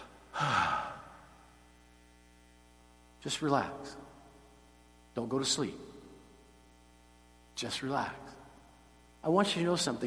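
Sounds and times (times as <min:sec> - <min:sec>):
deep breath in and out: 0:00.3 - 0:01.3
speech: 0:03.2 - 0:04.1, 0:05.2 - 0:05.9, 0:07.6 - 0:08.4, 0:09.2 - 0:10.0.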